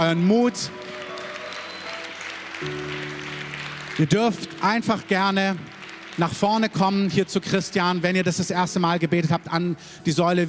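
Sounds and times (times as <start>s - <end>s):
speech: 0.0s - 1.0s, 2.6s - 3.0s, 4.0s - 10.4s
audience applause: 0.1s - 8.5s.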